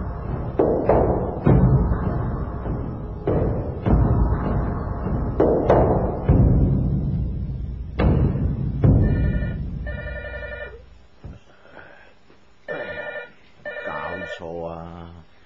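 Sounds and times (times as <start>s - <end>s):
heavy thuds: 0.0s - 10.0s, 10.9s - 11.5s
home telephone ringing with an incoming call: 9.0s - 10.8s, 12.7s - 14.5s.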